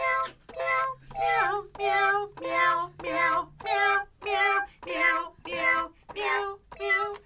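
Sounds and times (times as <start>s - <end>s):
toy kitty cat keyboard playing meowing cat notes: 0.0s - 7.2s.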